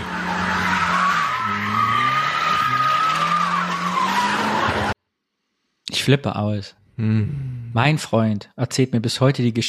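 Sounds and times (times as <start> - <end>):
car engine revving: 0.0 - 5.0
car tire squeal while drifting: 0.0 - 5.0
speech: 6.0 - 9.6.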